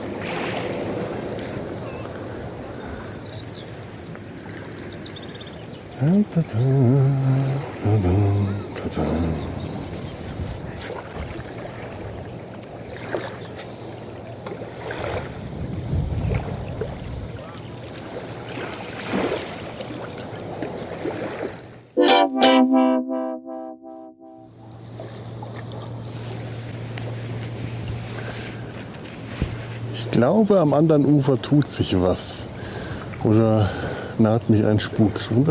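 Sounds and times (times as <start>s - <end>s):
small waves lapping against the hull of a boat on calm water: 0.0s - 21.9s, 25.4s - 35.5s
wind: 0.0s - 21.9s, 24.6s - 35.5s
speech: 6.0s - 9.6s, 30.4s - 32.5s, 33.2s - 35.5s
brief tonal voice-like sound: 22.0s - 24.6s.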